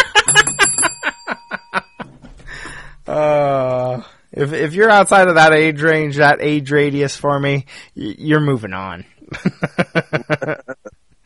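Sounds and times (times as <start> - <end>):
bright bell ringing: 0.0 - 2.3
speech: 4.4 - 10.7.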